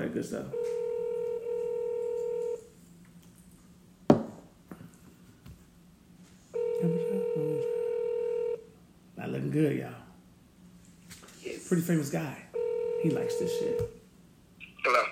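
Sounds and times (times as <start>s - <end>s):
speech: 0.2s - 0.8s, 9.5s - 10.0s, 11.7s - 14.0s, 14.8s - 15.0s
long electronic phone ring tones heard over the line: 0.5s - 2.6s, 6.6s - 8.6s, 12.6s - 13.9s.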